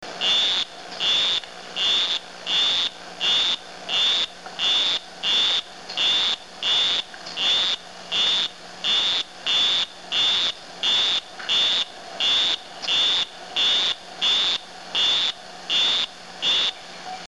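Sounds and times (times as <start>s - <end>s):
D granuliferus calls: 0.2s - 16.8s.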